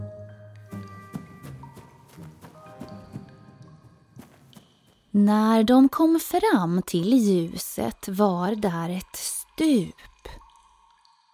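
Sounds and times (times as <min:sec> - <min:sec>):
sustained tonal music: 0:00.0 - 0:05.1
thudding footsteps of trolls running: 0:00.6 - 0:05.2
speech: 0:05.2 - 0:10.4.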